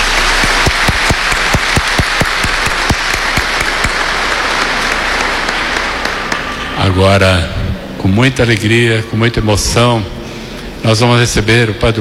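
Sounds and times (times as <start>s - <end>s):
large crowd applauding in a church: 0.0s - 7.2s
speech: 6.9s - 10.2s, 10.8s - 11.9s.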